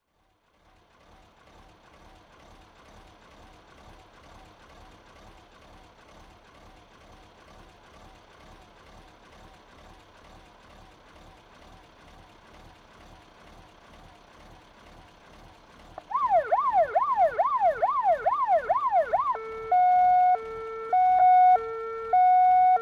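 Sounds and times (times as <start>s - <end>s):
fire engine electronic siren being tested: 16.0s - 22.8s.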